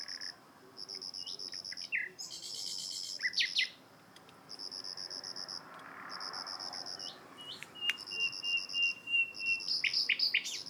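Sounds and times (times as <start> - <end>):
common nightingale song: 0.9 - 3.8, 6.9 - 10.6.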